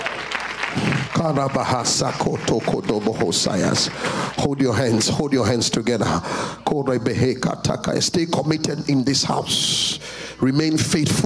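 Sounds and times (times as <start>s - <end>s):
church audience clapping: 0.0s - 5.6s
speech: 1.2s - 11.2s.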